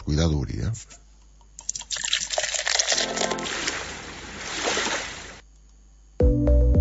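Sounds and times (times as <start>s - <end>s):
bottle being opened: 1.6s - 3.9s
liquid pouring from a bottle: 1.6s - 5.4s
music: 3.0s - 3.5s, 6.2s - 6.8s.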